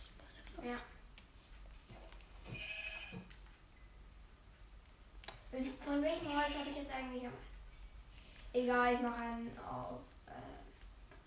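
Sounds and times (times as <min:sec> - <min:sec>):
speech: 0:00.6 - 0:01.0, 0:05.5 - 0:07.5, 0:08.5 - 0:10.6
single sheep bleating: 0:02.5 - 0:03.3.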